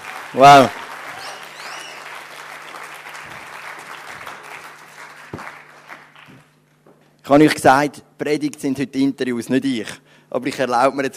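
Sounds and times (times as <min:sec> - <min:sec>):
audience applause: 0:00.0 - 0:06.6
sharp claps: 0:00.0 - 0:06.6
speech: 0:00.3 - 0:00.8, 0:07.3 - 0:11.1.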